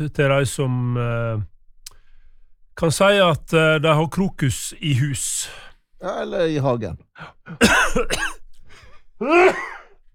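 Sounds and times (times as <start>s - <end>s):
speech: 0.0s - 1.5s, 2.8s - 8.4s, 9.2s - 9.8s
person coughing loud rough throaty coughs: 7.5s - 8.4s, 9.2s - 10.0s.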